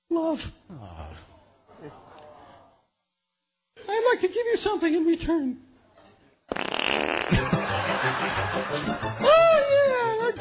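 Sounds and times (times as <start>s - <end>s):
speech: 0.2s - 2.1s, 4.1s - 5.7s, 8.7s - 10.3s
laughter: 1.7s - 2.7s, 7.3s - 10.3s
long loud wet fart: 6.5s - 7.6s.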